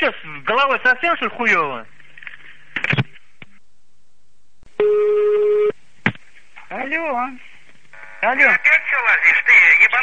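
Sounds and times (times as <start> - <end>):
speech: 0.0 - 2.0, 6.7 - 7.5, 8.2 - 10.0
telephone ringback tone on a call: 4.8 - 5.7.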